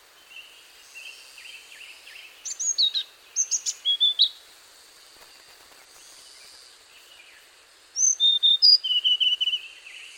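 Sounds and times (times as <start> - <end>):
Hainan blue flycatcher Cyornis hainanus singing: 0.1 - 4.4, 5.2 - 10.1.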